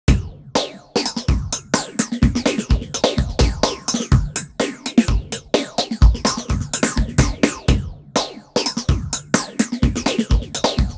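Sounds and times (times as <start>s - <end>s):
up down drums processed with a plugin: 0.0s - 10.9s.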